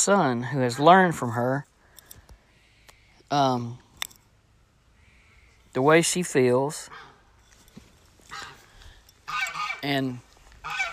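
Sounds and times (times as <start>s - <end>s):
speech: 0.0s - 1.7s, 3.3s - 3.8s, 5.8s - 7.1s, 9.8s - 10.8s
goose honking: 8.3s - 8.6s, 9.2s - 10.9s.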